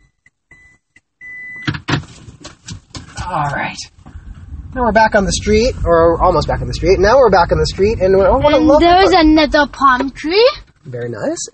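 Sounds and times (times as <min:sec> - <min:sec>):
Toyota Prius reverse warning beeping: 0:00.0 - 0:01.7
rustling, thumping car noise: 0:00.6 - 0:11.4
speech: 0:03.3 - 0:04.0, 0:04.7 - 0:11.5.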